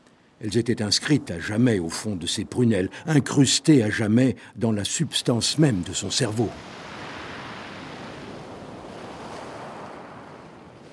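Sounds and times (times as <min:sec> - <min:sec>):
blustery wind at the foot of a cliff at Étretat: 0:00.0 - 0:10.9
speech: 0:00.4 - 0:06.9
sea waves at the foot of a cliff at Étretat: 0:05.6 - 0:10.9.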